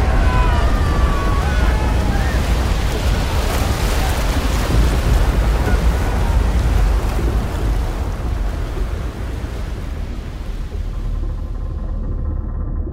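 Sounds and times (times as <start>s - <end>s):
light gust of wind over open water: 0.0s - 12.8s.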